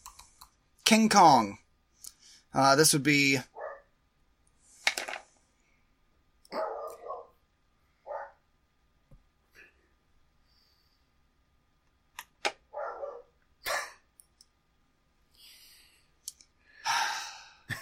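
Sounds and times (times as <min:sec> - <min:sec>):
speech: 0:00.9 - 0:01.6, 0:02.6 - 0:03.5
dog barking: 0:03.6 - 0:03.9, 0:06.5 - 0:07.4, 0:08.1 - 0:08.4, 0:12.7 - 0:14.0.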